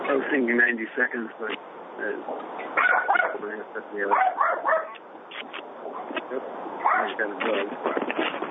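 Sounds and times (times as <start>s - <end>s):
speech: 0.1s - 4.5s, 7.0s - 8.3s
dog barking and yipping over a muffled call-quality line: 2.6s - 3.4s, 4.1s - 5.1s, 5.8s - 6.2s, 6.8s - 7.2s.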